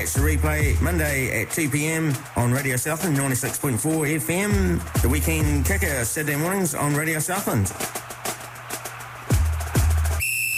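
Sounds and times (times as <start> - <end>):
speech: 0.0 - 8.1
whistle blowing: 8.6 - 10.5.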